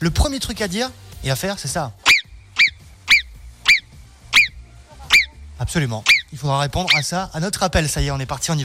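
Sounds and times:
speech: 0.0s - 2.1s, 5.7s - 8.6s
person imitating a marmot's whistle: 2.0s - 5.4s, 6.0s - 7.1s.

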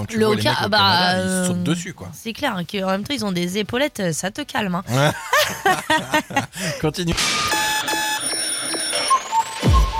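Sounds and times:
speech: 0.0s - 7.6s
laughter: 4.9s - 6.9s
electronic alarm clock ringing: 7.2s - 9.9s.

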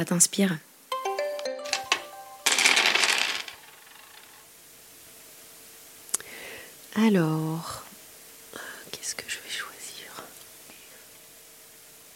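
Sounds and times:
speech: 0.0s - 0.7s, 7.0s - 7.8s
dice being rolled: 1.7s - 4.4s.

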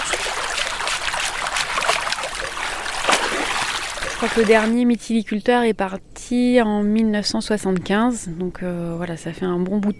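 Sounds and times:
fresh mussels being rinsed in water: 0.0s - 4.8s
speech: 4.2s - 9.9s.

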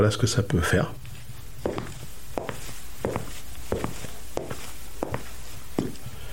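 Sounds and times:
speech: 0.0s - 1.1s
quiet hum: 0.0s - 6.3s
foley footsteps in men's shoes: 1.1s - 6.1s.

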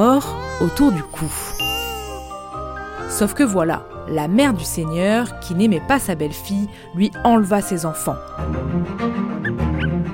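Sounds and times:
speech: 0.0s - 1.6s, 3.1s - 9.3s
puppies whimpering and yipping: 0.0s - 2.3s
puppies short high-pitched squeals: 0.0s - 3.1s.

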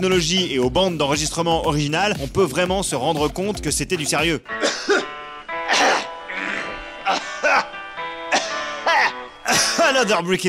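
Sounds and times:
speech: 0.0s - 5.0s, 10.0s - 10.4s
man clearing his throat during a song intro: 4.6s - 9.9s.

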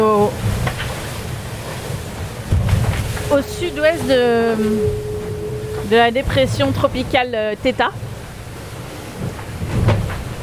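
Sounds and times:
deep rumble of a rough chaotic sea: 0.0s - 10.4s
strong northwest wind roaring across the microphone aboard a sailing boat: 3.2s - 7.4s
speech: 3.3s - 5.1s, 5.9s - 8.1s.

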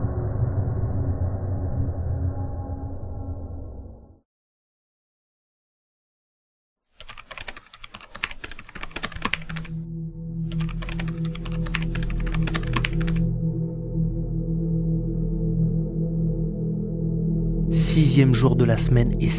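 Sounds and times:
steady low humming tone: 0.0s - 4.2s, 9.8s - 18.3s
rapid clicking of computer keyboard keys: 7.0s - 9.8s, 10.5s - 13.3s
speech: 18.0s - 19.3s.

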